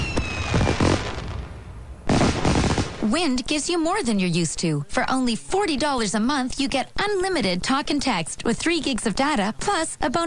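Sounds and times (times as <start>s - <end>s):
rising firework whistle: 0.0s - 1.0s
celebratory fireworks booming and crackling: 0.0s - 3.4s
speech: 3.0s - 10.2s.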